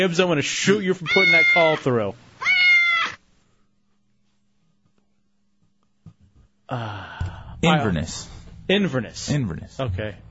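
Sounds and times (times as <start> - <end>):
speech: 0.0 - 2.6, 6.7 - 10.2
cat meowing: 1.0 - 3.2
faint low thump: 7.2 - 10.2.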